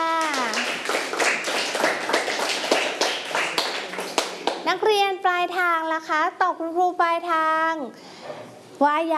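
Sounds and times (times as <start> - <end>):
classroom group clapping for a student: 0.0 - 4.8
speech: 5.4 - 9.1.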